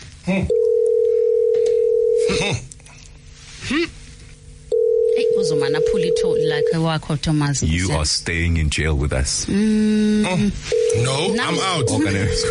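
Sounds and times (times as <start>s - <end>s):
speech: 0.2s - 0.7s, 2.3s - 2.7s, 6.8s - 12.4s
telephone line electronic ringback tone: 0.5s - 2.3s, 4.7s - 6.8s, 10.7s - 12.4s.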